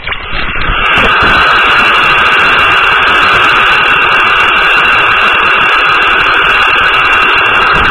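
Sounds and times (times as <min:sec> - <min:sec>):
radio static hiss on an air-traffic radio frequency monitored toward Iraq: 0:00.0 - 0:07.8.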